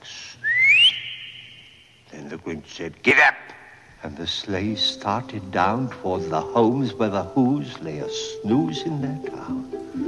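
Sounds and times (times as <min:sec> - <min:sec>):
soft breathy hiss: 0:00.0 - 0:10.0
sharp upward-sweeping whistle to call a dog: 0:00.4 - 0:01.8
speech: 0:02.4 - 0:10.0.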